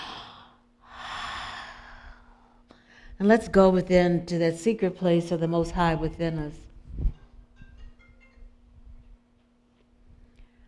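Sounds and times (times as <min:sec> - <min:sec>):
slow breath out and deep breath in: 0:00.0 - 0:03.2
speech: 0:03.2 - 0:06.6.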